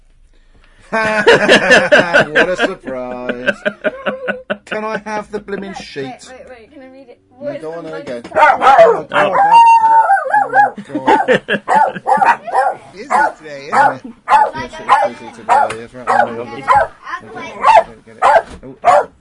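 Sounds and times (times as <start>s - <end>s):
laughter: 0.9s - 6.1s, 8.4s - 9.7s, 10.4s - 14.6s
speech: 0.9s - 6.5s, 7.4s - 19.1s
dog barking loudly: 8.3s - 19.1s.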